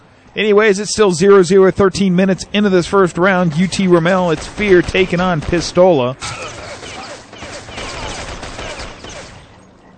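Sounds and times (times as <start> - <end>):
speech: 0.4 - 6.5
gunfire in a capture-the-flag video game match: 3.5 - 9.6.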